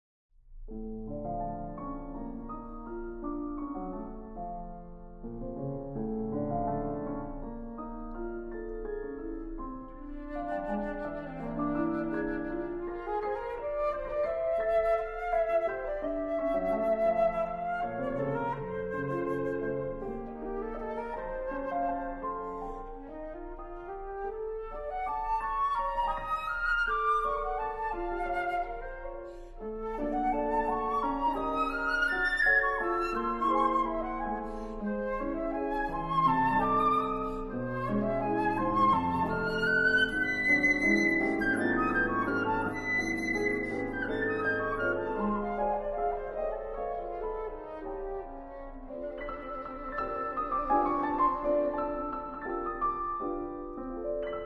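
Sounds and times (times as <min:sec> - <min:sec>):
piano playing: 0:00.7 - 0:54.4
flute playing: 0:10.0 - 0:54.4.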